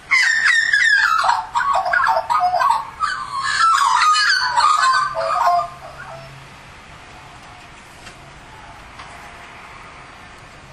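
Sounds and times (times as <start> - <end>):
Australian magpie singing flute-like warbling notes: 0.1 - 6.4.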